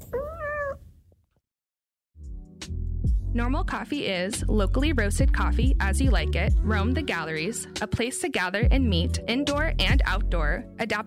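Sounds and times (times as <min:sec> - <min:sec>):
pet cat meowing: 0:00.0 - 0:00.9
speech: 0:03.3 - 0:11.0.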